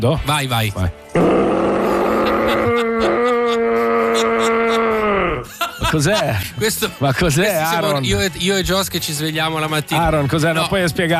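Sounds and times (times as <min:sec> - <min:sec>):
speech: 0:00.0 - 0:01.6, 0:05.9 - 0:11.1
rutting stag bellowing: 0:01.2 - 0:05.0
laughter: 0:01.8 - 0:06.6.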